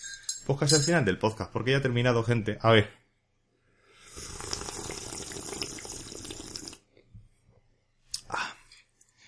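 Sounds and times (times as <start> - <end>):
speech: 0.5 - 3.0
slurping sip of hot herbal infusion: 4.0 - 6.8.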